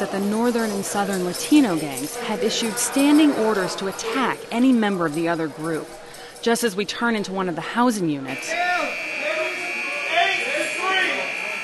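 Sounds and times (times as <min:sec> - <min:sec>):
speech: 0:00.0 - 0:08.7
high electronic alarm tone in a housing unit at San Quentin prison: 0:08.3 - 0:11.6.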